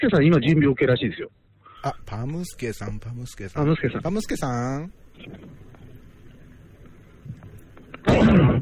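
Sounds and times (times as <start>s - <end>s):
speech: 0.0s - 5.8s, 8.1s - 8.6s
faint noise: 0.0s - 8.6s
loud rough throat clearing: 8.0s - 8.6s.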